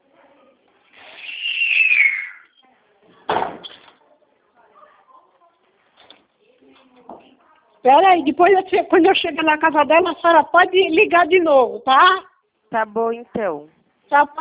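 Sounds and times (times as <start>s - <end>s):
door shutting with a solid thud: 3.3s - 3.7s
speech: 7.8s - 14.4s.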